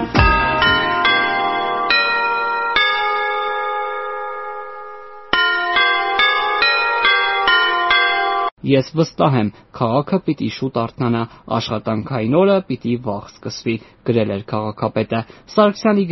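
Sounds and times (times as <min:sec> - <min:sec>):
city hall bells chiming an anthem: 0:00.0 - 0:08.5
speech: 0:08.7 - 0:16.1.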